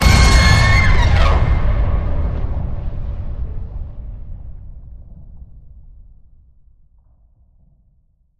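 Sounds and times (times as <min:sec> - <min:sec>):
screech hit: 0:00.0 - 0:02.8.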